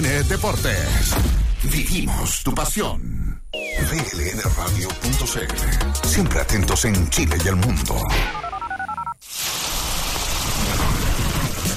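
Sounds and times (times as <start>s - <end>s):
speech: 0.2s - 3.2s, 3.8s - 8.4s
electronic beeps: 3.6s - 4.3s, 8.1s - 9.2s
heavy rain: 9.3s - 11.7s.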